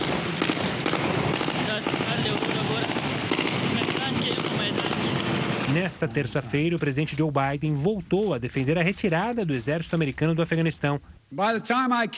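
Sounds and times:
celebratory gunfire bursts in Afghanistan: 0.0 - 6.0
loud dense outdoor din: 0.0 - 11.2
speech: 5.8 - 12.1.

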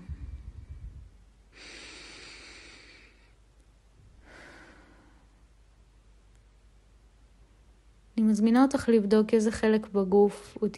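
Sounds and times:
slow deep breath in: 0.1 - 3.4, 4.2 - 5.4
speech: 8.3 - 10.7.

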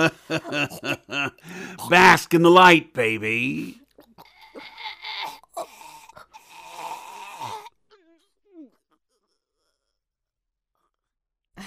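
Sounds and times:
laughter: 0.0 - 2.1
speech: 0.0 - 3.8
woman gasping for air: 1.4 - 1.8
woman choking: 4.0 - 8.7.

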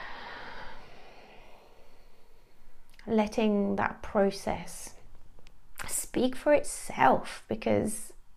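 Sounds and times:
slow airy breath out: 0.0 - 2.9
speech: 3.1 - 5.0, 6.1 - 8.1.

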